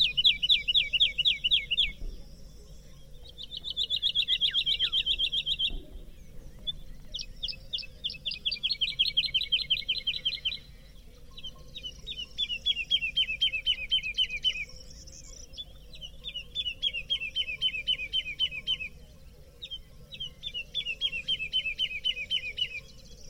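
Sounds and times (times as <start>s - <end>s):
steady low hum: 0.0s - 23.2s
woodlark singing fluty falling notes: 0.0s - 23.2s.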